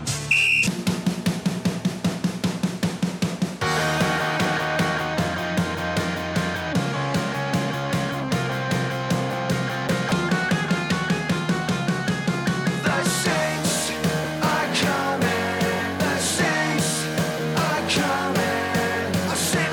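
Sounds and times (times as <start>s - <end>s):
loud rhythmic music with a steady pulsing beat: 0.1s - 19.7s
shrill whistle blown to start a race: 0.2s - 0.7s.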